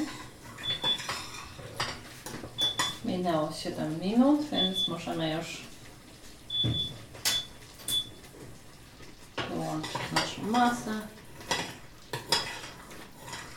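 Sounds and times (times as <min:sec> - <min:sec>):
metal teaspoon scraping and clinking inside a pot of sugar mixture: 0:00.0 - 0:03.0, 0:11.2 - 0:13.5
speech: 0:03.2 - 0:05.7, 0:06.6 - 0:07.0, 0:09.8 - 0:11.2.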